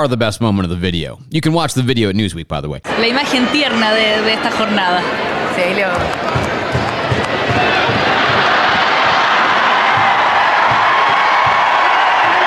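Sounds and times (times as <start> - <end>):
speech: 0.0 - 6.5
big stadium crowd roaring at a dog running loose on the field: 2.9 - 12.4
scattered whoops from a stadium crowd: 9.8 - 12.4.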